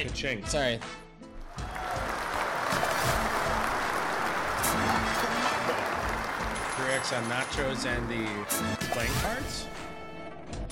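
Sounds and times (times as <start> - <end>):
speech: 0.0 - 1.0, 6.8 - 9.8
crowd applause sound effect: 1.5 - 8.6.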